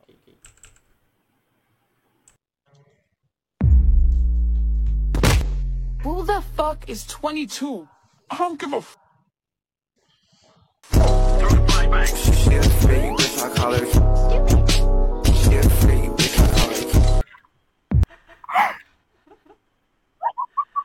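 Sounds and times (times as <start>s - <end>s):
loud music with heavy bass and layered tones: 3.6s - 6.8s, 10.9s - 17.2s
speech: 6.2s - 9.0s, 12.0s - 14.3s.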